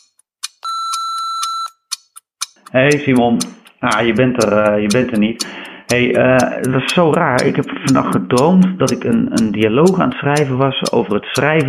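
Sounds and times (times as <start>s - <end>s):
voicemail greeting beep: 0.6s - 1.8s
speech: 2.6s - 11.6s.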